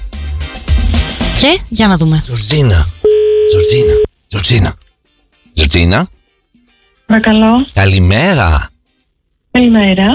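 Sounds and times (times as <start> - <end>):
speech: 1.4 - 4.8, 5.6 - 6.2, 7.1 - 8.7, 9.6 - 10.1
telephone tone during rotary dialing: 3.0 - 4.1.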